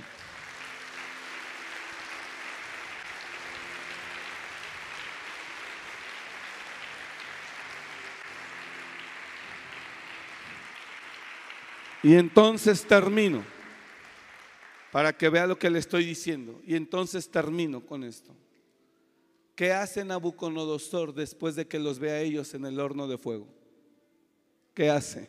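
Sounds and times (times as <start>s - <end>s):
faint low tones of an organ or keyboard: 0.0s - 11.4s
audience applauding: 0.0s - 15.6s
speech: 12.0s - 13.5s, 14.9s - 18.5s, 19.6s - 23.6s, 24.8s - 25.2s.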